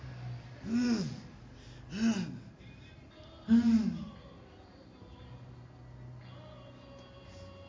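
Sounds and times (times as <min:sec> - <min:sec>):
man groaning in pain as his hands are nailed during a crucifixion: 0:00.6 - 0:01.3, 0:01.9 - 0:02.5, 0:03.5 - 0:04.2
breathy gasping: 0:00.6 - 0:02.6, 0:03.5 - 0:04.2.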